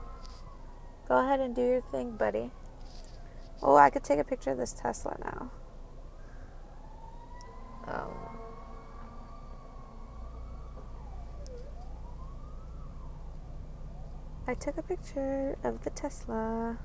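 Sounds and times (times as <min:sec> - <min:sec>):
ambulance siren wailing: 0:00.0 - 0:16.8
road traffic rumble: 0:00.0 - 0:16.8
speech: 0:01.1 - 0:02.6, 0:03.6 - 0:05.6, 0:14.5 - 0:16.8.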